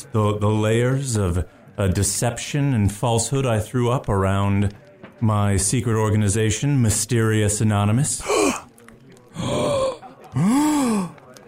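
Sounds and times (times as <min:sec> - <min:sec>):
speech: 0:00.1 - 0:08.6
dramatic gasps: 0:08.2 - 0:08.7, 0:09.4 - 0:11.2.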